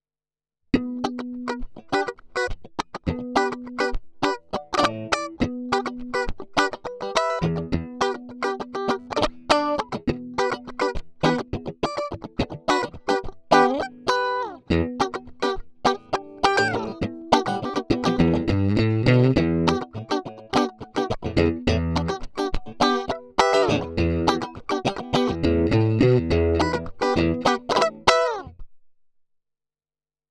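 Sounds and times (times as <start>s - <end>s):
funk on a Stratocaster electric guitar: 0.8s - 28.5s.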